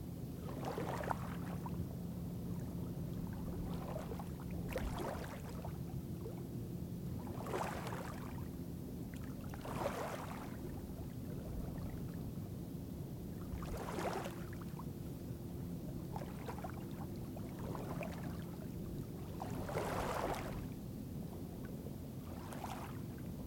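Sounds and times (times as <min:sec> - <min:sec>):
steady low droning hum: 0:00.0 - 0:23.4
water lapping against a lakeshore: 0:00.4 - 0:01.8, 0:02.5 - 0:06.4, 0:07.1 - 0:08.5, 0:09.2 - 0:12.3, 0:13.3 - 0:14.8, 0:16.0 - 0:20.8, 0:22.2 - 0:23.3.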